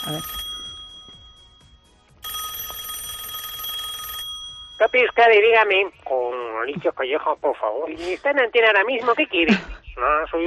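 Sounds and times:
speech: 0.0 - 0.5, 4.8 - 10.4
telephone ringing in a radio station newsroom: 0.0 - 6.0.

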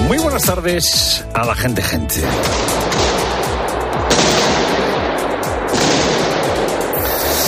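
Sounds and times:
speech: 0.1 - 3.1
rapid bursts of gunfire from an attack: 2.3 - 7.4.

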